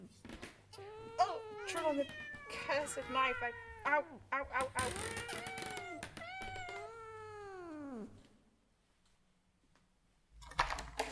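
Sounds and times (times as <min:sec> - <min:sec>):
cats meowing and yowling: 0:00.8 - 0:08.2
speech: 0:01.7 - 0:05.4.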